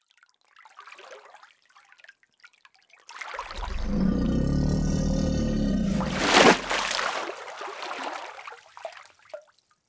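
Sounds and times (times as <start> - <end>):
random animal sounds: 3.5 - 6.7
alligator: 3.5 - 7.1.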